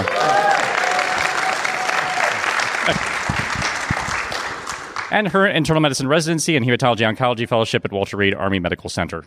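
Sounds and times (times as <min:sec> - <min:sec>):
audience applause: 0:00.0 - 0:05.3
speech: 0:02.9 - 0:03.1, 0:05.1 - 0:09.2.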